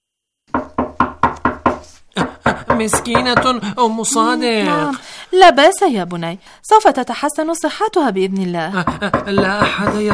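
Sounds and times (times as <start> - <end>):
firm knocking on a wooden door: 0.5 - 3.6, 8.8 - 10.1
speech: 2.2 - 10.1.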